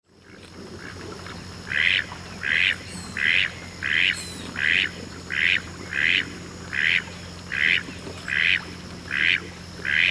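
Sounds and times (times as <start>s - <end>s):
spectacled duck calls: 1.7s - 10.0s.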